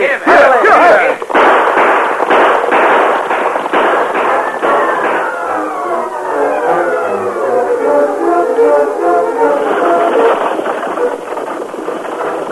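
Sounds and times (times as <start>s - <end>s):
repeated gunshots: 0.3s - 6.7s, 10.2s - 12.5s
rumbling tonal clatter: 3.2s - 12.5s.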